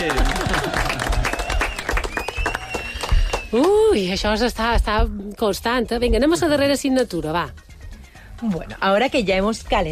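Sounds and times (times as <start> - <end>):
applause: 0.0 - 3.8
speech: 3.5 - 7.6, 8.4 - 9.9.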